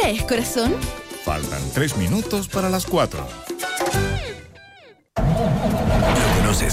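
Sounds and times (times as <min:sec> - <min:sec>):
speech: 0:00.1 - 0:03.5, 0:06.1 - 0:06.6
truck diesel engine cranking and starting: 0:05.2 - 0:06.6.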